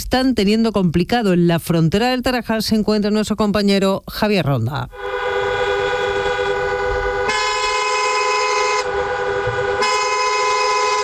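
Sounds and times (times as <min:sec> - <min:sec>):
speech: 0:00.0 - 0:05.2
low rumble of vehicles queuing at a border crossing: 0:04.9 - 0:11.0
car horns honking at a busy border crossing: 0:05.0 - 0:11.0.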